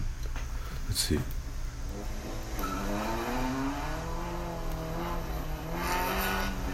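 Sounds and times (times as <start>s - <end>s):
speech: 1.0s - 1.4s
car engine revving while drifting: 1.7s - 6.7s
tires squealing and skidding across pavement: 2.2s - 6.7s.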